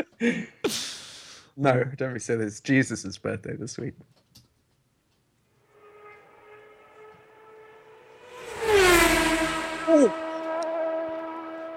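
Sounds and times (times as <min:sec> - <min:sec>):
speech: 0:00.2 - 0:01.0, 0:01.6 - 0:04.2
car horn: 0:05.7 - 0:11.7.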